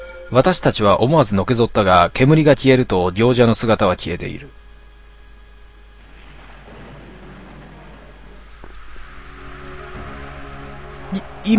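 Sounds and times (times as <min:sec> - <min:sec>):
speech: 0:00.3 - 0:04.6, 0:11.1 - 0:11.5
sharp crack of thunder: 0:06.0 - 0:10.6
thunder rumbling: 0:06.0 - 0:11.5.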